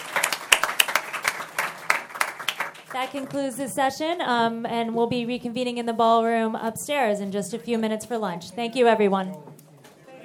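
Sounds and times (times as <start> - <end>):
small audience clapping for panelists at a conference session: 0.0 - 3.7
speech: 3.0 - 9.6.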